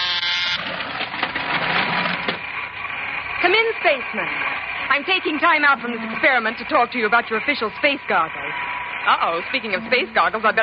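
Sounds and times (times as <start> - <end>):
electric door buzzer: 0.0 - 10.6
speech: 3.4 - 10.6.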